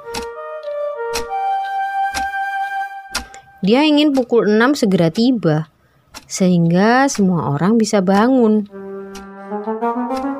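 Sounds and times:
wall clock ticking: 0.0 - 0.4, 1.1 - 2.4, 3.1 - 10.3
soft sustained musical drone: 0.0 - 3.7, 8.7 - 10.3
speech: 3.6 - 5.7, 6.3 - 8.8.

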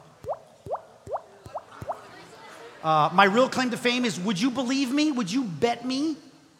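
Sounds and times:
voice imitating water drops with rising bloop sounds: 0.2 - 2.0
speech: 2.8 - 6.3.

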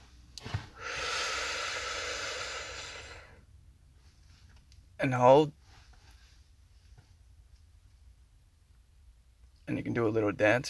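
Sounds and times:
long deep inhale: 0.6 - 3.5
brief sharp sniff: 0.7 - 3.4
speech: 5.0 - 5.6, 10.0 - 10.6.

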